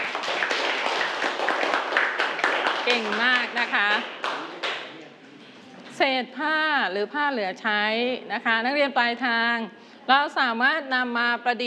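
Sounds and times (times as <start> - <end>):
students applauding a classmate group during a classroom lesson: 0.0 - 4.9
speech: 2.9 - 4.2, 6.0 - 11.6.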